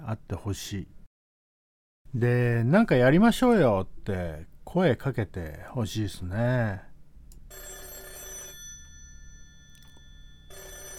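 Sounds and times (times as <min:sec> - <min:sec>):
speech: 0:00.1 - 0:01.0, 0:02.1 - 0:06.9
telephone ringing with electronic trill: 0:07.5 - 0:10.9.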